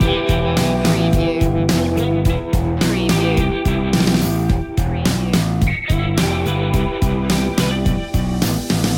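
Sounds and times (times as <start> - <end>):
indie music loop: 0.0 - 8.9.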